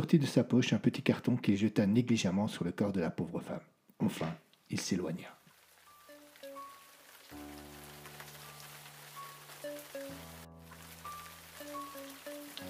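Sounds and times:
speech: 0.0 - 5.4
light rain pattering across a surface: 4.5 - 12.6.

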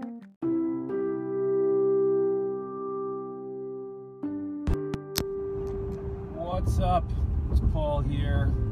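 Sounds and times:
synth-style musical intro of sustained chords: 0.4 - 7.1
low rumble of a car's interior on the road: 6.0 - 8.6.

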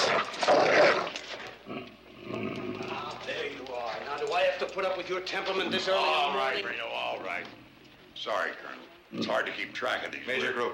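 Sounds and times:
dog growling with a rough, throaty snarl: 0.0 - 3.3, 9.1 - 9.7
speech: 4.6 - 7.6, 8.2 - 10.7.

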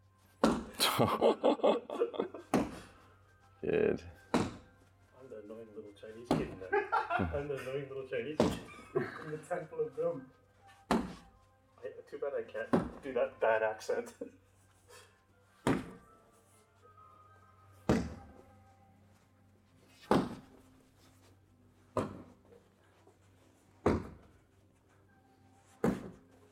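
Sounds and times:
laughter: 0.8 - 2.5, 6.5 - 7.9, 8.5 - 9.6
speech: 1.0 - 2.6, 3.6 - 4.2, 5.3 - 10.4, 11.8 - 14.4
heavy punches landing on a pad or bag during boxing training: 4.3 - 4.6, 10.9 - 11.2, 15.6 - 16.0, 17.8 - 18.3, 20.1 - 20.4, 22.0 - 22.3, 23.8 - 24.2, 25.8 - 26.1.

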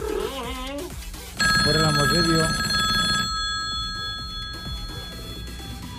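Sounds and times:
telephone ringing with an electronic bell tone: 1.4 - 5.9
speech: 1.6 - 2.7.

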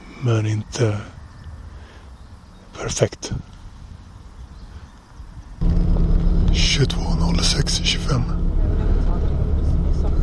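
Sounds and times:
road noise: 0.0 - 10.2
speech: 0.2 - 1.2, 2.8 - 3.5, 6.6 - 8.4
bus engine droning inside the cabin during a ride: 5.6 - 10.2.

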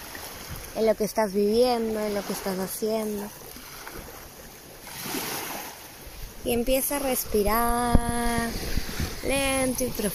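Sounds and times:
ocean waves washing in: 0.0 - 10.1
speech: 0.8 - 3.4, 6.5 - 10.1
light rush of wind: 6.2 - 10.1.

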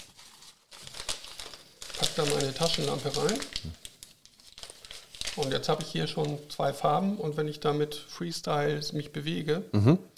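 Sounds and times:
gift wrapping paper rustling and crinkling: 0.0 - 6.6
speech: 2.2 - 3.8, 5.4 - 10.1.

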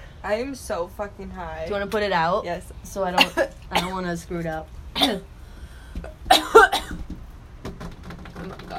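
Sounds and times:
speech: 0.2 - 5.3
person coughing: 3.2 - 4.0, 6.0 - 7.0.

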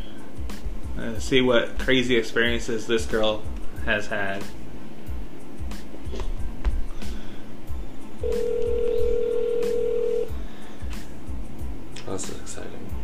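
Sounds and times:
low thumping rhythmic background: 0.0 - 13.0
speech: 1.0 - 4.6
telephone ring tone on an outgoing call: 8.2 - 10.3.

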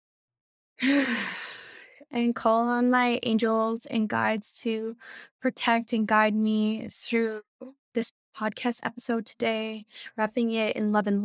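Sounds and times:
speech: 0.8 - 1.4, 2.1 - 11.2
deep breath: 0.8 - 2.0.

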